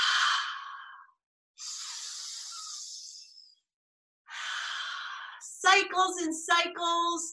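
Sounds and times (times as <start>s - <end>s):
deep breaths in and out during a guided meditation: 0.0s - 3.3s, 4.3s - 5.5s
speech: 5.6s - 7.3s.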